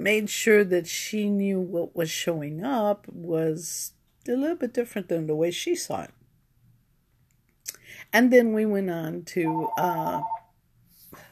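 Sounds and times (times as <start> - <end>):
speech: 0.0 - 6.2, 8.1 - 10.4
electronic alert tone from a phone: 9.4 - 10.4.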